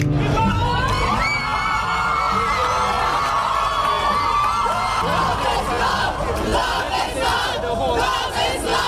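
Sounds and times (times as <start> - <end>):
large outdoor crowd cheering and shouting on courthouse steps: 0.1 - 8.8
whoops: 0.2 - 5.4.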